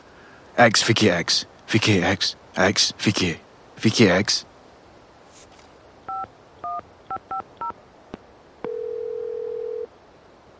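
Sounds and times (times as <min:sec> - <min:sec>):
speech: 0:00.6 - 0:04.5
steady electronic phone ringing tone: 0:06.1 - 0:07.7, 0:08.6 - 0:09.9
phone keypad beeps dialing a number: 0:06.1 - 0:07.8
phone line click: 0:08.6 - 0:09.9.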